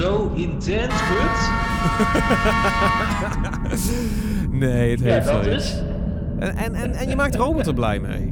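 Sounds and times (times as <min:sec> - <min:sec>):
speech: 0:00.4 - 0:08.3
train horn holding a sustained chord-like tone: 0:00.9 - 0:03.4
laughter: 0:01.7 - 0:05.0.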